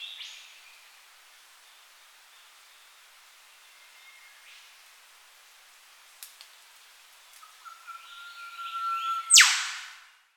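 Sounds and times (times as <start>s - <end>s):
Eastern whipbird call in a tropical setting: 7.4s - 10.1s.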